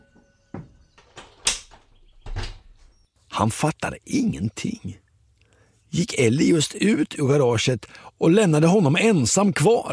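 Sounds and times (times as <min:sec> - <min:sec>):
door handled with clunks and rattles: 0:00.2 - 0:03.0
door slamming shut with a loud bang: 0:00.5 - 0:02.9
speech: 0:03.4 - 0:05.0, 0:05.9 - 0:09.9.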